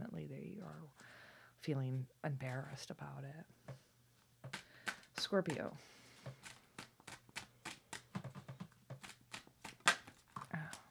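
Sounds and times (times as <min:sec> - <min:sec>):
speech: 0:00.7 - 0:03.8, 0:05.2 - 0:06.5
deck of cards being shuffled: 0:04.4 - 0:10.9.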